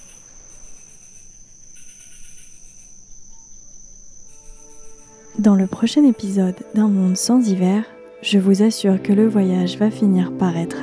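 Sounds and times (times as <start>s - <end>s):
crickets trilling high-pitched at night: 0.0s - 7.8s
low hum: 0.0s - 7.8s
speech: 5.4s - 10.8s.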